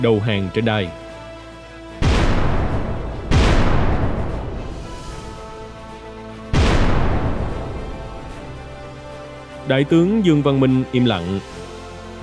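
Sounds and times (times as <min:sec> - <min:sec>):
speech: 0:00.0 - 0:01.0, 0:09.7 - 0:11.6
explosions or artillery fire outside a palace: 0:02.0 - 0:09.2.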